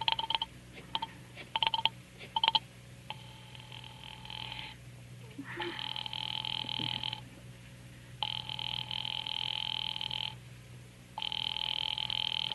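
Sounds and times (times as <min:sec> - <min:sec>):
telephone ringing on the line during a call to the police department: 0:00.0 - 0:04.7, 0:05.7 - 0:07.2, 0:08.2 - 0:10.4, 0:11.2 - 0:12.5
steady electronic buzz on a telephone line: 0:00.0 - 0:04.8, 0:05.4 - 0:07.3, 0:08.2 - 0:10.4, 0:11.2 - 0:12.5.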